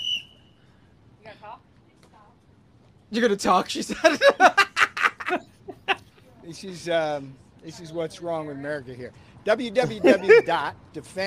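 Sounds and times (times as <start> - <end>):
softer warbling whistle notes: 0.0 - 0.6
brief piercing whistle: 0.0 - 0.7
speech: 3.1 - 4.7, 5.3 - 5.5, 6.5 - 11.2
laughter: 3.8 - 6.1, 9.8 - 10.6.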